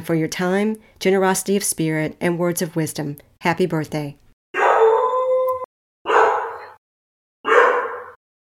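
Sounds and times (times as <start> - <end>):
speech: 0.0 - 4.2
puppy howling: 4.6 - 6.8, 7.5 - 8.2.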